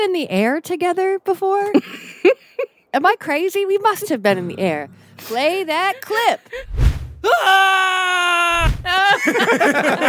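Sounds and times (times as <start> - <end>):
speech: 0.0 - 10.0
people screaming on an old Ferris wheel: 7.2 - 9.2
laughter: 8.8 - 10.0.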